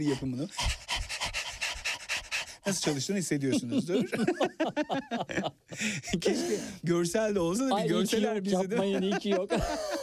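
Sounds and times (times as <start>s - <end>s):
speech: 0.0s - 0.9s, 2.6s - 10.0s
person imitating a dog's panting as a breathing exercise: 0.0s - 3.1s
laughter: 2.7s - 6.5s, 7.7s - 10.0s.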